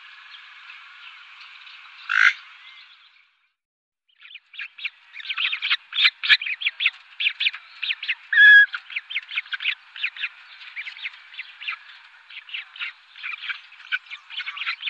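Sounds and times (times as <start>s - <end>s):
Western swamphen squawking and clucking: 5.2s - 14.8s.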